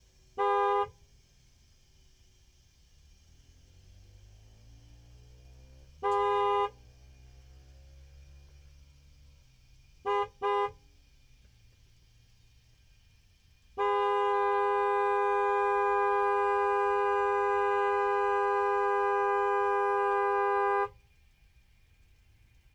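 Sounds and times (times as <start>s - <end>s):
2012 Nissan 370Z exhaust: 0.0s - 22.7s
2012 Nissan 370Z horn: 0.3s - 1.1s, 5.9s - 7.1s, 10.0s - 11.1s, 13.7s - 21.1s.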